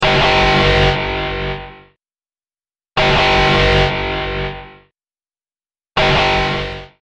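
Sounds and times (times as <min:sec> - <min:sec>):
warning alarm: 0:00.0 - 0:02.0, 0:03.0 - 0:04.8, 0:06.0 - 0:07.0.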